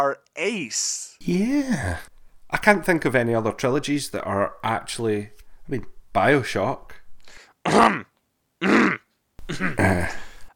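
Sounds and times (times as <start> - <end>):
speech: 0.0 - 10.3
man clearing his throat: 7.6 - 10.4.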